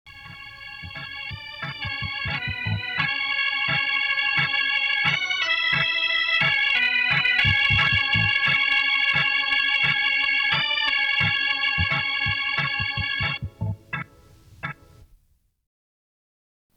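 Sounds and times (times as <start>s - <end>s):
organ playing: 0.1s - 15.1s.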